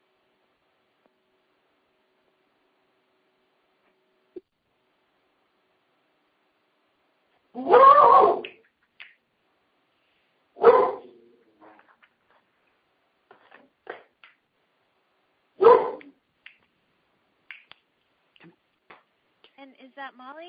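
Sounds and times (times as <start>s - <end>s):
dog barking at neighbors: 7.6s - 8.5s, 10.6s - 11.2s, 15.6s - 16.2s
shuffling noises: 11.6s - 14.0s
speech: 19.6s - 20.4s.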